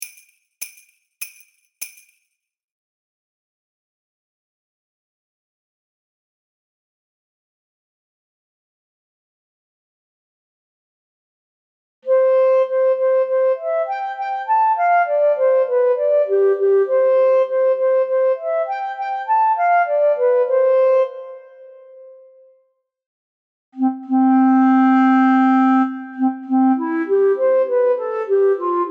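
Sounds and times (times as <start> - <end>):
B-flat clarinet melody: 12.1 - 22.3, 23.8 - 28.8.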